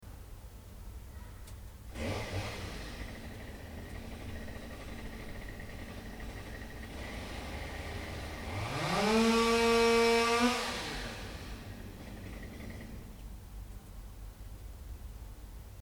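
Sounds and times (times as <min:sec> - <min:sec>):
chainsaw: 0:01.9 - 0:13.2.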